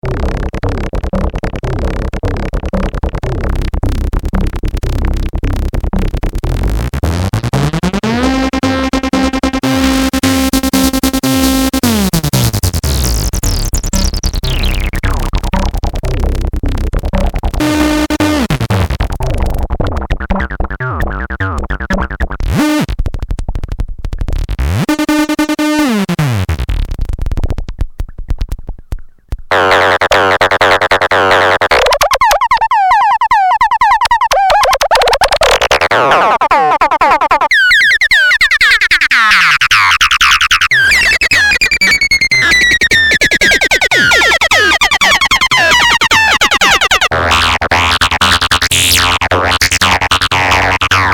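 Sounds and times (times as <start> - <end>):
acid FM synth: 0.0 - 28.6, 29.5 - 51.1.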